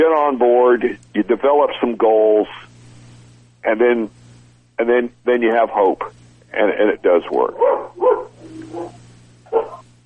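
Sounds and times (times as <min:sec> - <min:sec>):
speech: 0:00.0 - 0:02.7, 0:03.6 - 0:04.2, 0:04.8 - 0:09.7
stray dog barking: 0:07.5 - 0:09.8.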